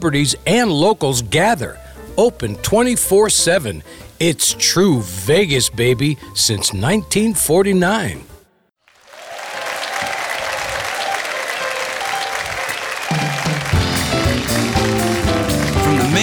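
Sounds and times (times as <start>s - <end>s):
speech: 0.0s - 8.3s
large sold-out audience applauding in a Las Vegas hotel showroom: 8.8s - 16.2s
band music: 10.2s - 16.2s.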